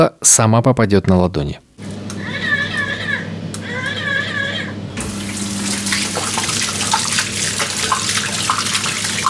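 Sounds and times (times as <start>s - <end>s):
speech: 0.0s - 1.9s
high-pitched warbling cries: 2.2s - 4.8s
water running from a touchless sensor faucet: 5.0s - 9.2s.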